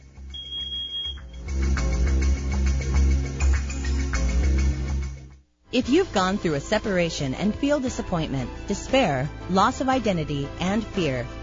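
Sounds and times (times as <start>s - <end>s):
louder music-like sound: 0.0s - 11.4s
shrill high-pitched smoke alarm beep: 0.3s - 1.4s
speech: 5.7s - 11.4s.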